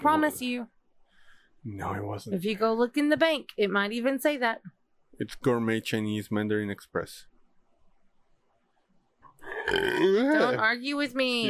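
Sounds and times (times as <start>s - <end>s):
speech: 0.0s - 0.8s, 1.6s - 7.3s, 9.7s - 11.4s
short gurgly burp: 9.4s - 10.6s.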